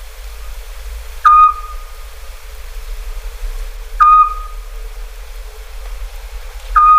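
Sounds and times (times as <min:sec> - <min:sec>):
quiet background hiss: 0:00.0 - 0:06.9
Eurasian scops owl giving a short whistled note: 0:01.2 - 0:02.1, 0:04.0 - 0:04.6, 0:06.8 - 0:06.9.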